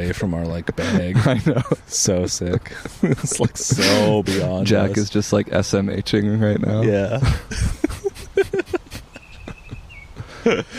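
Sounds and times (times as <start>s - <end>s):
voices: 0.0s - 7.4s
speech: 0.0s - 7.8s
laughter: 0.6s - 5.1s, 7.0s - 10.7s
bird whistling outdoors by a river: 9.1s - 10.2s.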